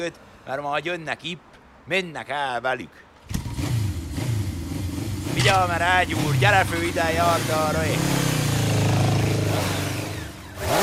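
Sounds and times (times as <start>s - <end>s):
speech: 0.0s - 3.1s, 5.4s - 8.3s
motorcycle engine revving loudly: 3.2s - 10.8s.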